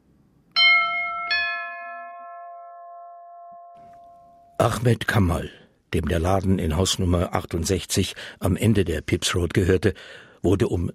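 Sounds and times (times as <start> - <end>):
house doorbell ding-dong chime: 0.6 - 4.6
speech: 4.6 - 10.9.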